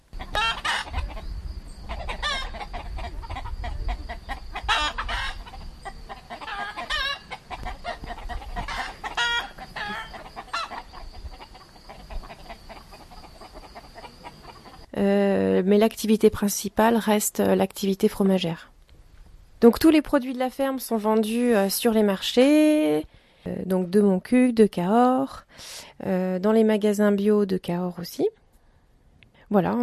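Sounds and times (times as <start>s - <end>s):
flock of chickens clucking in the poultry yard of a goat and sheep cheese farm: 0.1s - 14.9s
rooster crowing: 4.6s - 11.0s
speech: 15.7s - 18.7s, 19.6s - 28.4s, 29.5s - 29.8s.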